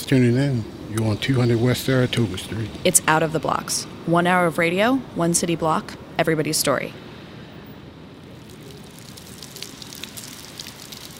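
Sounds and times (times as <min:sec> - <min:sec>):
steady rain falling: 0:00.0 - 0:11.1
speech: 0:00.1 - 0:07.0
raindrops tapping a nearby surface: 0:08.4 - 0:11.1.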